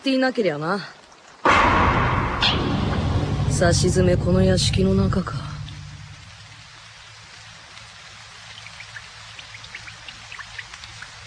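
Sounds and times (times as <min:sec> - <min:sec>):
speech: 0:00.0 - 0:01.0, 0:03.6 - 0:05.5
steady rain hissing: 0:00.0 - 0:11.2
rain droplets pattering and ticking on a surface: 0:05.6 - 0:11.2.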